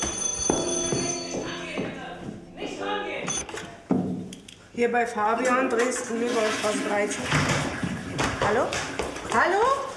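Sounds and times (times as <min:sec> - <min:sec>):
old telephone bell ringing in a film scene: 0:00.0 - 0:02.0, 0:03.2 - 0:03.4
speech: 0:04.8 - 0:07.7, 0:08.5 - 0:09.8.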